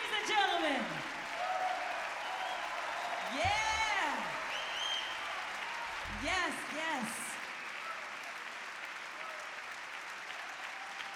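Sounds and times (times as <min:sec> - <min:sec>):
audience applause after live jazz performance: 0:00.0 - 0:11.1.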